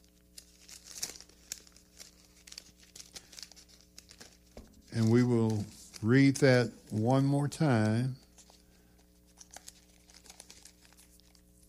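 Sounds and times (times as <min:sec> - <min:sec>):
book pages turning: 0:00.0 - 0:11.6
low steady hum: 0:00.0 - 0:11.6
speech: 0:05.0 - 0:08.2.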